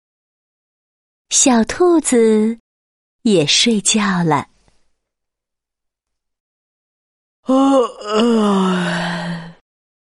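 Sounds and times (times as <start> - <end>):
speech: 1.3 - 2.6, 3.2 - 4.5, 7.5 - 9.1
voice imitating a pig yawning: 7.5 - 9.6.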